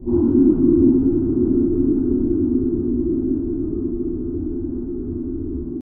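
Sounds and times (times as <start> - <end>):
cold echo ambience: 0.0 - 5.8.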